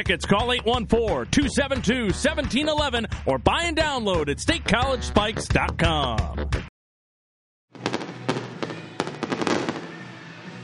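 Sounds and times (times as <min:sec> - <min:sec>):
speech: 0:00.0 - 0:06.6
fireworks exploding over a minor-league ballpark after a game: 0:07.8 - 0:10.1.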